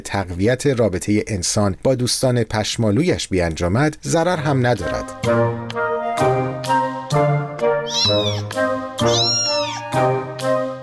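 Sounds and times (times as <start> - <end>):
speech: 0.0 - 10.2
cat meowing and yowling: 7.8 - 10.0.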